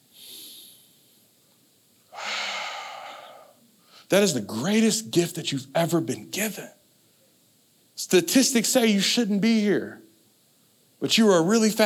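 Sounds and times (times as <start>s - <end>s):
audience in a room taking a deep breath together: 2.1s - 4.1s
speech: 4.1s - 6.8s, 8.0s - 10.0s, 11.0s - 11.8s.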